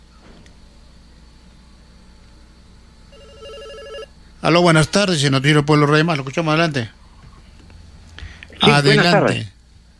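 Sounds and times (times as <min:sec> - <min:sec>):
faint steady hum: 0:00.0 - 0:09.9
telephone ringing with electronic tones for an incoming call: 0:03.1 - 0:04.1
speech: 0:04.4 - 0:07.0, 0:08.8 - 0:09.6.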